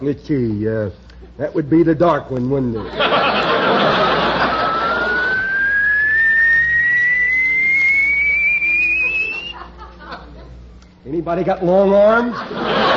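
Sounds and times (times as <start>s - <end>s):
speech: 0.0s - 4.0s, 11.1s - 12.9s
laughter: 2.7s - 5.8s, 8.8s - 10.7s, 12.2s - 12.9s
hydraulic car lift whining while raising a car on a rack: 3.0s - 9.7s.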